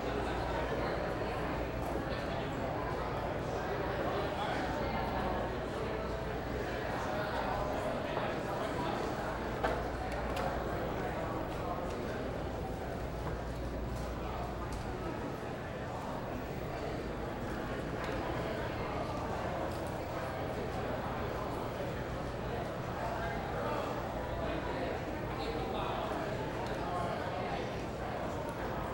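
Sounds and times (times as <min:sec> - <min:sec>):
murmur of many voices in a bar restaurant: 0:00.0 - 0:28.9.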